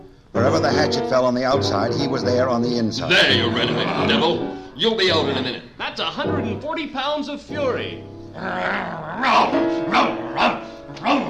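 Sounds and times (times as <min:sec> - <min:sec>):
speech: 0:00.4 - 0:11.2
dog snarling: 0:08.4 - 0:11.2
dog barking harshly and aggressively: 0:09.8 - 0:11.2.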